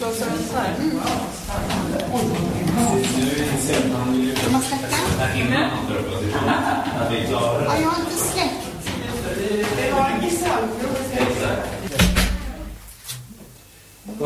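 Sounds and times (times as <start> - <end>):
people talking: 0.0 - 13.4, 14.1 - 14.2
laughter: 5.8 - 8.0
door opened and shut with a solid low thump: 11.2 - 13.3.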